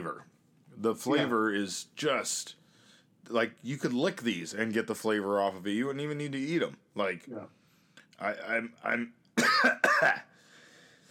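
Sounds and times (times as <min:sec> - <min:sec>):
speech: 0:00.0 - 0:02.6, 0:03.2 - 0:07.6, 0:08.2 - 0:10.3
throaty voiced throat-clearing: 0:09.4 - 0:10.3
person coughing: 0:09.4 - 0:10.4.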